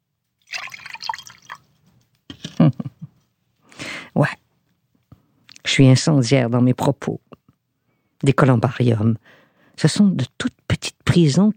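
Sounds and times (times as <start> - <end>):
drink being poured, liquid gurgling and splashing: 0.4 - 1.7
speech: 4.2 - 4.4, 5.8 - 7.3, 8.2 - 11.5.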